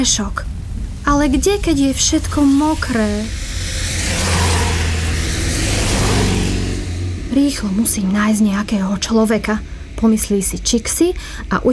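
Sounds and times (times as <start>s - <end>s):
speech: 0.0s - 0.5s, 1.1s - 3.9s, 7.4s - 11.7s
broad road noise: 0.0s - 11.7s
car engine rumbling while driving along a road: 0.0s - 11.7s.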